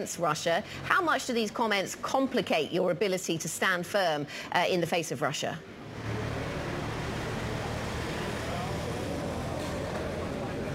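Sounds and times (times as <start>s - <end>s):
speech: 0.0s - 6.1s
road traffic rumble with engines droning: 5.6s - 10.7s.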